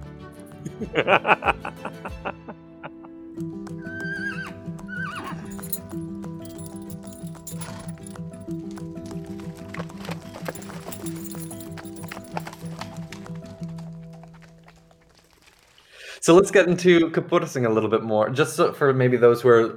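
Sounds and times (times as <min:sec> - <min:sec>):
speech: 0:00.8 - 0:02.4, 0:16.3 - 0:19.7
laughter: 0:00.8 - 0:03.1
horse whinny: 0:04.0 - 0:05.3
horse hooves clip-clopping: 0:05.2 - 0:08.6, 0:10.5 - 0:12.8.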